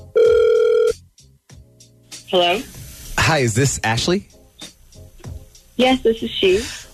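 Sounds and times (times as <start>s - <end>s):
faint short phone line sounds: 0.1s - 1.0s
outgoing phone call ringing: 0.2s - 1.0s
speech: 2.3s - 4.4s, 5.8s - 6.9s.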